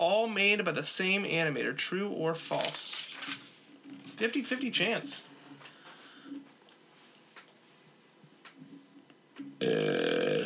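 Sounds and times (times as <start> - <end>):
speech: 0.0 - 3.4, 4.2 - 5.3, 9.6 - 10.0
quiet rustling: 2.3 - 7.3
loud sustained burp: 9.6 - 10.4.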